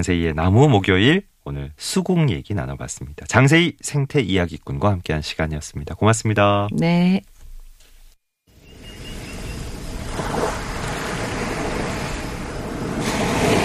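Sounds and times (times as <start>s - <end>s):
speech: 0.0s - 7.3s
ocean waves breaking on shore: 9.0s - 13.6s.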